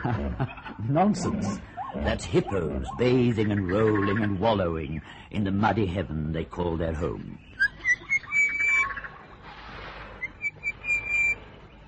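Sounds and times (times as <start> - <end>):
speech: 0.0 - 7.5
outdoor noise: 0.0 - 11.8
orange-breasted bushshrike singing whistled notes: 1.8 - 3.2, 7.4 - 9.0, 10.2 - 11.8.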